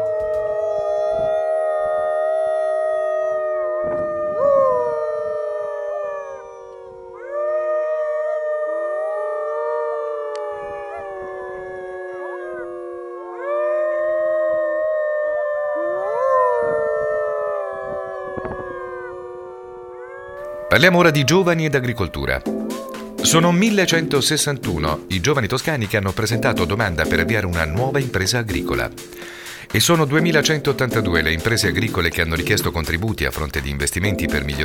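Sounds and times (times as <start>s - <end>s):
pack of wolves howling in the wild: 0.0s - 24.3s
speech: 20.8s - 34.6s.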